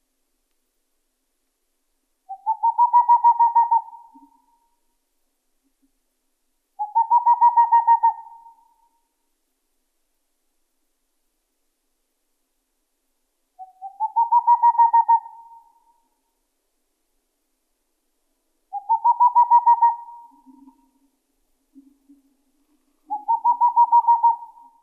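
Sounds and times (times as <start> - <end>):
Boreal owl fast trill of hollow hoots: 2.3 - 4.8, 6.8 - 9.1, 13.6 - 16.2, 18.7 - 21.1, 23.1 - 24.8.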